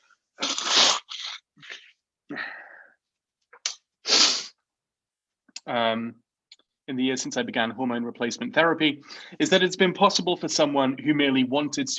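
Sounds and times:
person sneezing: 0:00.4 - 0:01.4, 0:03.7 - 0:04.6
short voiced sigh: 0:02.3 - 0:03.0
speech: 0:05.7 - 0:06.3, 0:06.9 - 0:11.9.

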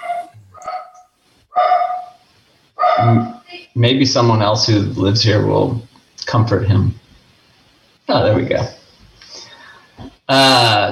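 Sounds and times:
dog barking: 0:00.0 - 0:02.2, 0:02.8 - 0:03.4
speech: 0:03.0 - 0:07.0, 0:08.1 - 0:08.8, 0:10.3 - 0:10.9.

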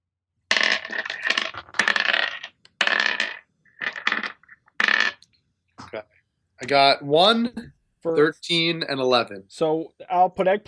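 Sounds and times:
dice rattling across a hard tabletop: 0:00.5 - 0:05.3
speech: 0:05.9 - 0:10.6.

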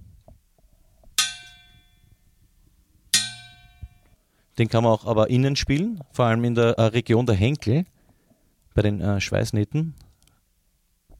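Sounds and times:
metal soup pot struck like a drum: 0:01.2 - 0:01.9, 0:03.1 - 0:04.0
speech: 0:04.6 - 0:07.9, 0:08.8 - 0:10.0.

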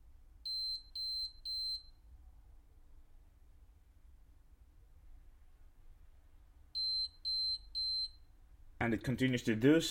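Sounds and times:
refrigerator door-open alarm beeping: 0:00.4 - 0:02.0, 0:06.8 - 0:08.3
speech: 0:08.8 - 0:09.8.

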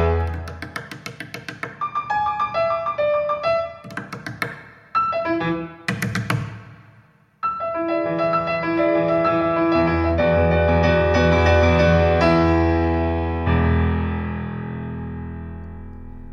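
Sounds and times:
sustained piano notes and chords: 0:00.0 - 0:06.8, 0:07.4 - 0:16.3
sharp wooden knocks: 0:00.2 - 0:01.8, 0:03.8 - 0:04.8, 0:05.9 - 0:06.7.

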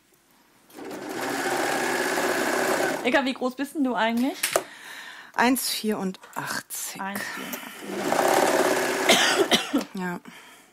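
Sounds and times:
sewing machine stitching through thick fabric: 0:00.7 - 0:03.2, 0:07.8 - 0:09.1
speech: 0:03.0 - 0:04.5, 0:05.4 - 0:10.5.

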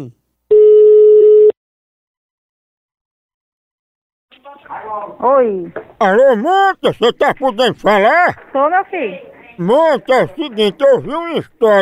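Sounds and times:
speech: 0:00.0 - 0:00.2, 0:04.6 - 0:11.7
ringing tone of an outgoing telephone call: 0:00.5 - 0:01.6.

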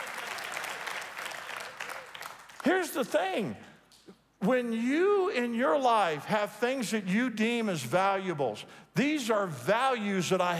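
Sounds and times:
audience clapping: 0:00.0 - 0:04.0
speech: 0:02.7 - 0:03.7, 0:04.4 - 0:10.5.

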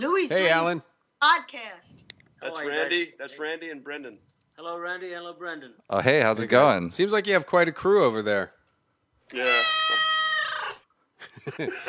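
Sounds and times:
speech: 0:00.0 - 0:08.6, 0:09.3 - 0:10.1, 0:11.4 - 0:11.8
cat meowing: 0:09.3 - 0:10.8
laughter: 0:11.2 - 0:11.8.

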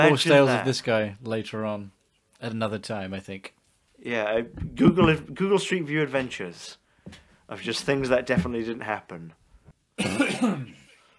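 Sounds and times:
speech: 0:00.0 - 0:09.4, 0:10.0 - 0:10.8
cough: 0:10.0 - 0:11.0.

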